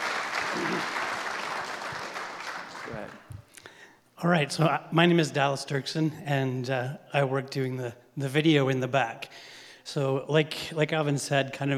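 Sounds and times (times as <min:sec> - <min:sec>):
audience applauding with dense clapping: 0:00.0 - 0:03.5
speech: 0:00.5 - 0:01.0, 0:04.2 - 0:11.7.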